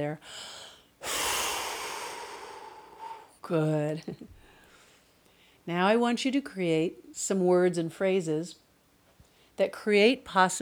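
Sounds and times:
speech: 0.0s - 1.2s, 3.5s - 4.4s, 5.6s - 8.6s, 9.6s - 10.6s
deep breath blown out during a guided relaxation exercise: 0.2s - 3.4s.

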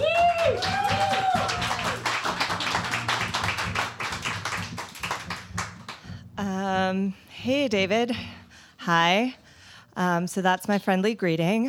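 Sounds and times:
whooping cheer: 0.0s - 2.8s
audience applauding: 0.0s - 6.1s
speech: 7.4s - 9.4s, 10.0s - 11.6s.

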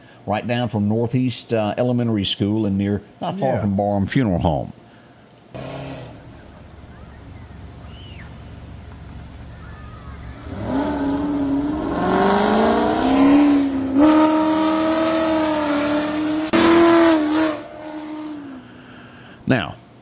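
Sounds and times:
speech: 0.2s - 4.8s
car engine revving in a park parking lot: 5.6s - 18.8s
tire noise: 5.6s - 18.8s.

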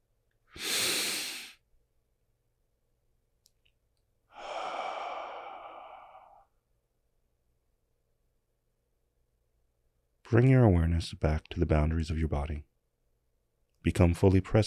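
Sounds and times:
deep breath in during a guided relaxation exercise: 0.6s - 1.6s, 4.3s - 6.5s
long slow exhale during a guided relaxation exercise: 0.6s - 1.6s, 4.3s - 6.5s
speech: 10.3s - 12.7s, 13.8s - 14.6s.

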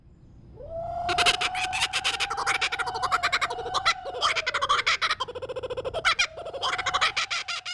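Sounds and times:
steady high drone of jungle ambience: 0.0s - 7.7s
kookaburra raucous laughing call: 1.1s - 7.7s.

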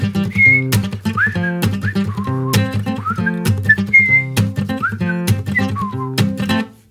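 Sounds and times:
person whistling a lilting melody: 0.0s - 6.4s
rhythmic strummed guitar accompaniment: 0.0s - 6.8s.

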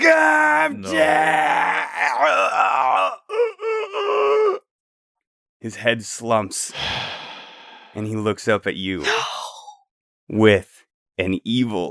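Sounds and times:
man crying out in pain as a performance: 0.0s - 4.6s, 9.0s - 9.7s
speech: 5.6s - 7.2s, 8.0s - 9.3s, 10.3s - 11.8s.

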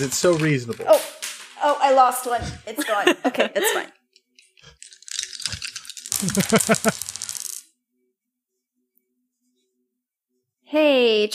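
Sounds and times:
several dice clattering across a hard surface: 0.0s - 2.3s, 4.6s - 7.7s
speech: 0.0s - 4.0s, 6.2s - 7.1s, 10.7s - 11.3s
laughter: 2.7s - 3.9s, 6.2s - 7.0s.

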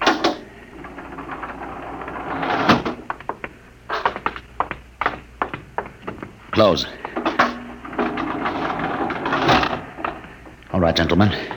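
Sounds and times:
spaceship airlock door opening: 0.0s - 3.1s, 7.2s - 10.3s
speech: 6.6s - 7.0s, 10.8s - 11.5s.

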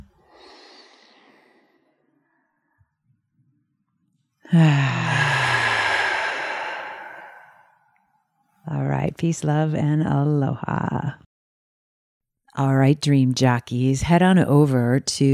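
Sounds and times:
group inhaling: 0.2s - 1.9s, 4.5s - 7.8s
speech: 4.5s - 5.0s, 9.2s - 11.3s, 12.6s - 15.3s
group exhaling: 4.5s - 7.8s.

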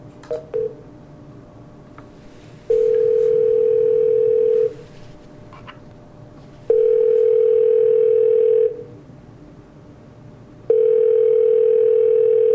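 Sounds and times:
phone dialing beeps: 2.7s - 4.7s, 6.7s - 8.7s, 10.7s - 12.5s.

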